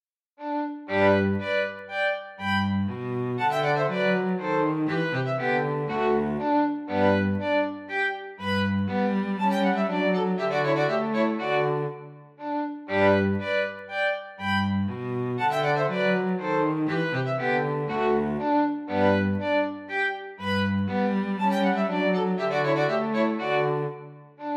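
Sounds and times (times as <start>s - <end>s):
minuet for two violins and bass: 0.4s - 24.5s.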